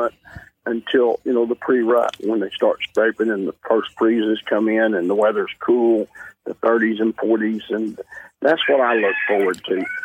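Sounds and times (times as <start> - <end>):
speech: 0.0 - 10.0
rooster crowing: 8.6 - 10.0.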